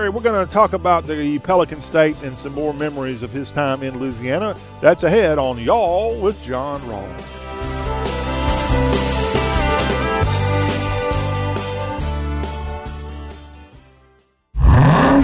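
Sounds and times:
speech: 0.0s - 7.4s
music with a steady beat: 7.1s - 13.8s
supercharged 6.2-liter Hemi V8 engine revving as it accelerates: 14.6s - 15.2s.

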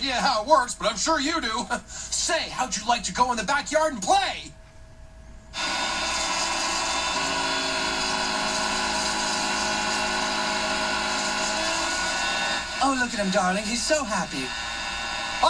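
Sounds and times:
speech: 0.0s - 4.6s, 12.8s - 14.7s
small engine roaring with a high-pitched whine: 5.6s - 15.4s.

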